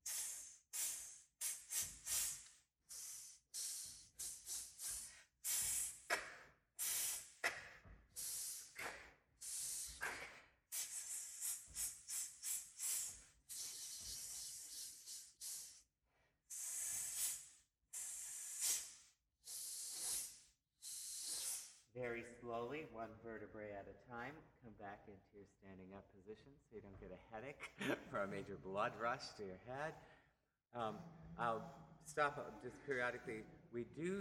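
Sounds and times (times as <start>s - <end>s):
rhythmic hissing breathing pattern for listeners to echo: 0.0s - 15.9s, 16.5s - 21.8s, 30.8s - 34.1s
speech: 22.0s - 30.1s, 30.7s - 34.1s.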